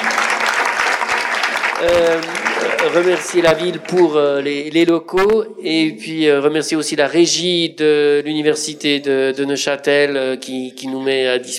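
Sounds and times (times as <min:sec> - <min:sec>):
audience applauding at a public science café event: 0:00.0 - 0:04.5
speech: 0:01.8 - 0:11.5.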